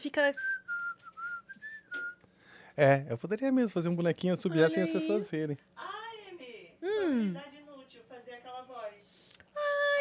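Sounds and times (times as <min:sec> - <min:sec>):
speech: 0:00.0 - 0:00.7, 0:02.8 - 0:05.9, 0:07.1 - 0:07.5
person whistling a tune: 0:00.4 - 0:02.2.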